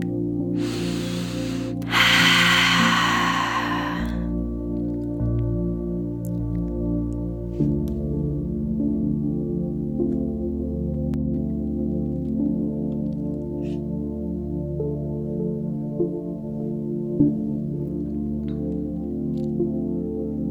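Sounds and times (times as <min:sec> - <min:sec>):
low steady tonal background: 0:00.0 - 0:20.4
deep slow breathing in and out for relaxation: 0:00.6 - 0:04.5.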